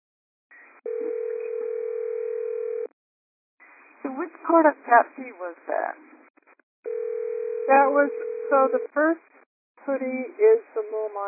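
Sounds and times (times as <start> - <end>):
telephone ringing with a line-filtered electronic tone: 0.9 - 2.9, 6.9 - 8.9
speech: 4.0 - 6.1, 7.7 - 11.2.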